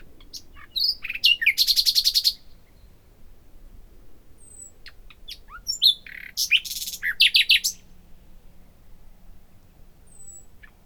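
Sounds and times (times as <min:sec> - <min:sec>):
common nightingale Luscinia megarhynchos song: 0:00.0 - 0:03.0, 0:04.4 - 0:07.9, 0:10.1 - 0:10.8.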